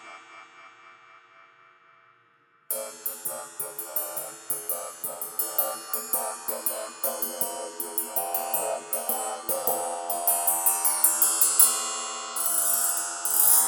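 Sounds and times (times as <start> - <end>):
Meinl Helix bowl ringing: 2.7 - 13.5.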